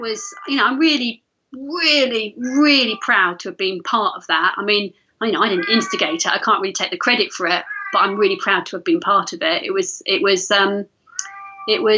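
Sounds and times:
cat meowing: 0.0 - 0.8, 2.6 - 3.4, 5.4 - 6.4, 7.1 - 8.7, 11.1 - 11.9
speech: 0.0 - 11.9.

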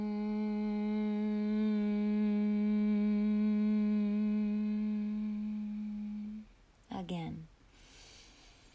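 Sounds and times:
person humming on exhale during humming bee breath practice: 0.0 - 6.5.

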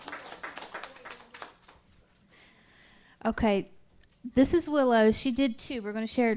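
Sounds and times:
small crowd applauding for a young girl: 0.0 - 2.3
speech: 3.2 - 6.3.

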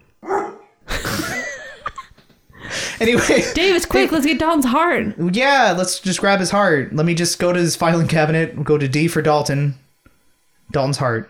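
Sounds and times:
dog barking: 0.2 - 0.8
laughter: 0.9 - 4.1
speech: 3.0 - 9.8, 10.7 - 11.2.

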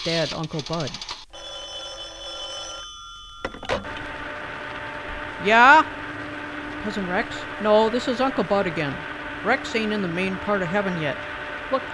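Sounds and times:
speech: 0.0 - 1.2, 5.4 - 6.0, 6.8 - 11.9
quiet hum: 0.0 - 11.9
old rotary telephone bell ringing: 1.3 - 5.0.

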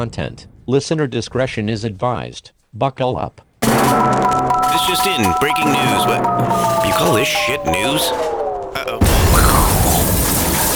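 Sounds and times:
speech: 0.0 - 9.1
brief tonal sound: 3.6 - 10.1
loud explosion with deep rumble: 3.6 - 10.7.

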